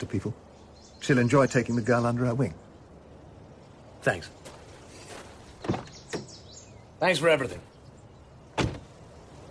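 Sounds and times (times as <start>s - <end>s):
speech: 0.0s - 2.6s, 4.0s - 4.4s, 7.0s - 7.7s
knocks and thumps: 5.6s - 6.3s, 8.6s - 8.9s.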